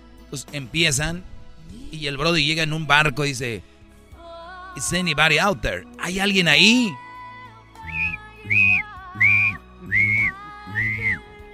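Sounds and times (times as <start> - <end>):
speech: 0.3 - 3.7, 4.8 - 7.0
clear sustained whistled notes: 7.8 - 11.3
low humming tone: 7.8 - 11.4.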